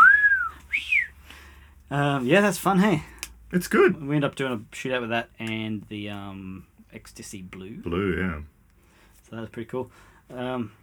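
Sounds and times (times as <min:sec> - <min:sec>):
person whistling two short clear notes: 0:00.0 - 0:01.2
speech: 0:01.9 - 0:08.6, 0:09.3 - 0:10.8.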